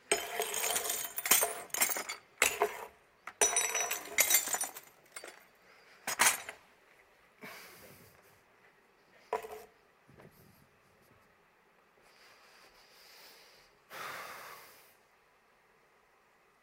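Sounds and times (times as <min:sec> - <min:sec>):
glass smashing into shards: 0:00.1 - 0:02.8, 0:03.4 - 0:05.4
glass pieces tinkling and scattering: 0:00.1 - 0:05.5, 0:06.1 - 0:06.6.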